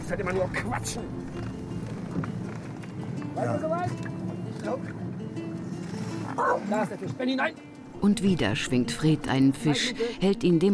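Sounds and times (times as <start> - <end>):
speech: 0.1 - 1.6, 2.2 - 2.4, 3.4 - 5.0, 6.4 - 10.7
dog yelping and whimpering: 6.3 - 6.6.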